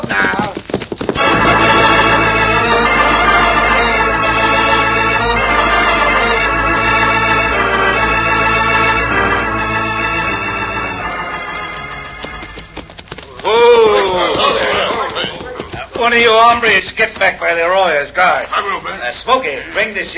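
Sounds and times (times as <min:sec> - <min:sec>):
horse hooves galloping: 0:00.0 - 0:18.0
orchestral music: 0:01.2 - 0:12.8
speech: 0:16.5 - 0:20.1.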